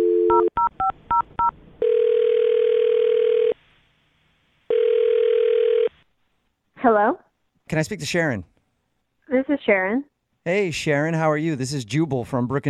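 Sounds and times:
long steady telephone ringing tones: 0:00.0 - 0:03.6, 0:04.7 - 0:05.9
speech: 0:06.8 - 0:08.5, 0:09.3 - 0:12.6.

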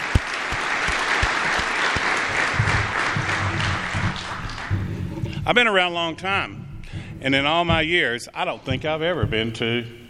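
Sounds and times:
sharp individual claps: 0:00.0 - 0:04.9
applause from an audience at an industry appreciation lunch: 0:00.0 - 0:05.4
speech: 0:05.5 - 0:06.6, 0:07.2 - 0:10.0.

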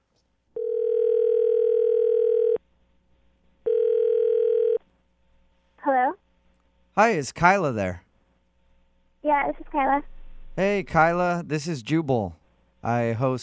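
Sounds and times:
telephone dial tone: 0:00.6 - 0:02.6, 0:03.7 - 0:04.8
speech: 0:07.0 - 0:08.0, 0:09.3 - 0:13.4.

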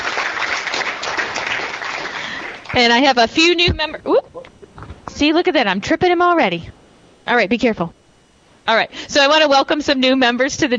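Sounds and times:
crowd applause at a morning chamber breakfast meeting: 0:00.0 - 0:02.8
speech: 0:02.8 - 0:04.5, 0:05.2 - 0:08.0, 0:08.7 - 0:10.7.

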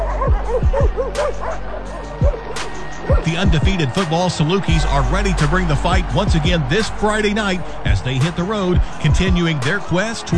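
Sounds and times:
dog barking: 0:00.0 - 0:03.3
speech: 0:03.2 - 0:10.3.

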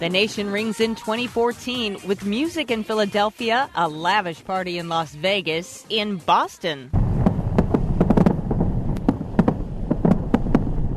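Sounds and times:
speech: 0:00.0 - 0:07.0
low rumbling background: 0:06.9 - 0:10.9
fireworks bursting in the night sky: 0:07.0 - 0:10.9.

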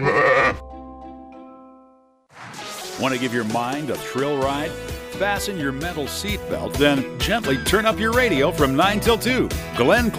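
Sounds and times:
sheep bleating: 0:00.0 - 0:00.6
speech: 0:03.0 - 0:10.1.

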